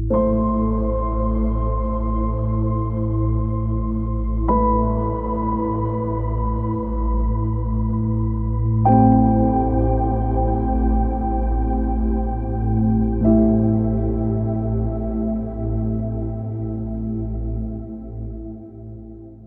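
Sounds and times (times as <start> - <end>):
cosmic void drone: 0.1 - 19.4.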